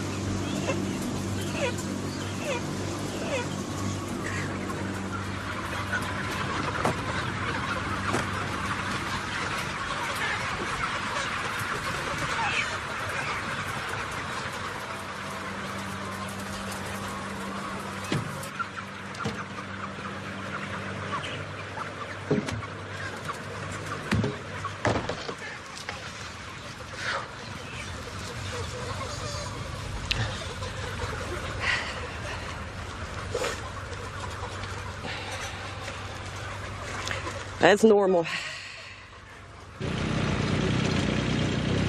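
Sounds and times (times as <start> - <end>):
many chickens clucking and murmuring in a barn: 0.0 - 41.8
speech: 37.6 - 38.5.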